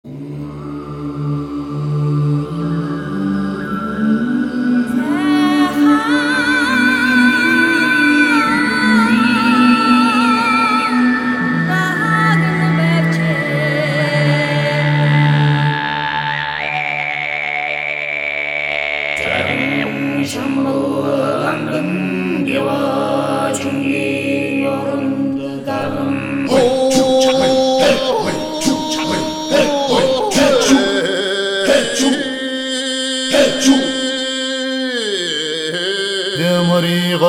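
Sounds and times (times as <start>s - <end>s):
Mongolian choir voices singing: 0.0s - 37.2s.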